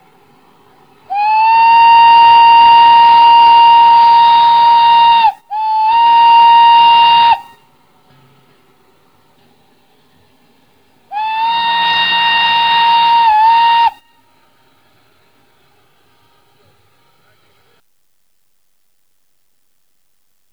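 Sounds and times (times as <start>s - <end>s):
train whistle: 0.0s - 17.8s.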